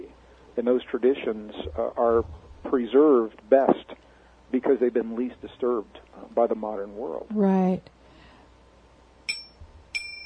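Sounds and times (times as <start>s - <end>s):
speech: 0.6s - 8.0s
two bright short chime dings marking the end of a segment: 9.3s - 10.2s.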